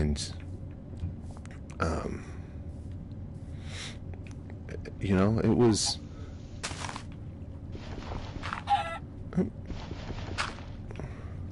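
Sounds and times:
speech: 0.0 - 0.4, 1.8 - 2.4, 4.8 - 6.0, 9.4 - 9.6
steady low rumbling noise: 0.0 - 11.5
chicken squawks: 8.6 - 9.0.

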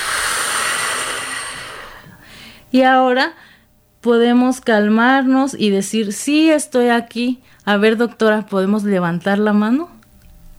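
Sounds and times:
people inhaling and exhaling in a guided relaxation breathing exercise: 0.0 - 2.7
speech: 2.7 - 10.0.

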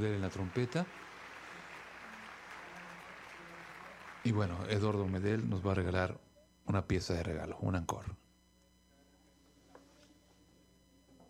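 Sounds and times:
speech: 0.0 - 1.2, 4.2 - 8.2
orchestra concert audience applause: 0.0 - 5.4.

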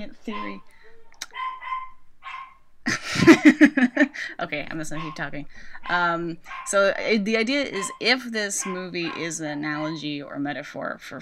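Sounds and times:
speech: 0.0 - 0.8, 3.1 - 11.1
dogs barking and yipping: 0.2 - 2.7, 4.8 - 10.0.

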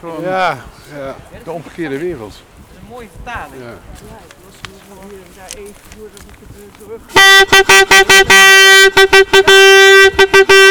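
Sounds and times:
speech: 0.0 - 10.7
vuvuzela blaring at a noise protest outside a detention centre: 6.9 - 10.7.

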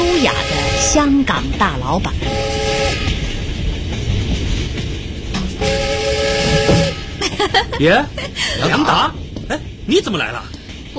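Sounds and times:
passenger train whistle: 0.0 - 1.1, 2.2 - 3.3, 5.6 - 7.2
passenger train rumbling and rattling, heard from inside a compartment: 0.0 - 10.9
speech: 0.2 - 2.6, 7.5 - 10.9
laughter: 7.2 - 9.2.

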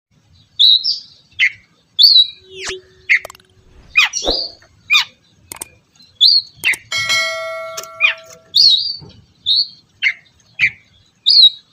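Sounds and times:
Oriental magpie-robin whistled and chirping song: 0.4 - 6.9, 7.9 - 11.7
sharp broadband click: 5.5 - 5.8.

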